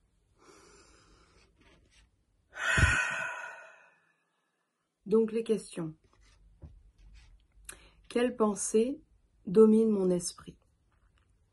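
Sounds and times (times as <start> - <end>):
deep breath in and out: 0.4 - 1.4, 2.5 - 4.5
speech: 5.1 - 6.0, 8.1 - 10.6.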